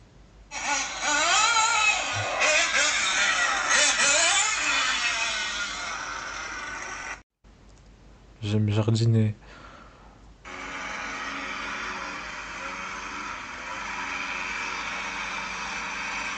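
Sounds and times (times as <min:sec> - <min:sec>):
remote-controlled toy car small electric motor whining: 0:00.5 - 0:07.2, 0:10.5 - 0:16.3
speech: 0:08.5 - 0:09.5.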